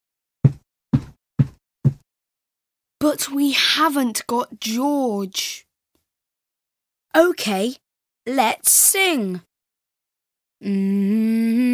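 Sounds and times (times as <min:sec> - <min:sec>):
feet stamping on floor: 0:00.4 - 0:02.0
speech: 0:03.0 - 0:05.6, 0:07.1 - 0:09.5, 0:10.6 - 0:11.7.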